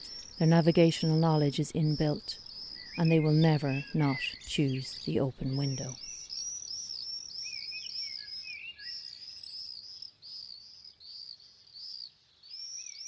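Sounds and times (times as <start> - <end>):
soft hiss: 0.0 - 7.0
high-pitched birdsong with bright chirps and trills: 0.0 - 13.0
speech: 0.4 - 2.4, 3.0 - 6.0.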